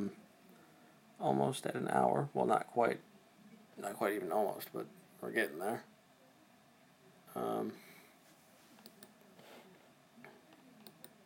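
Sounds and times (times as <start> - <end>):
speech: 1.2 - 3.1, 3.8 - 5.9, 7.4 - 7.9
faint irregular clicks: 8.8 - 9.2, 10.2 - 11.2.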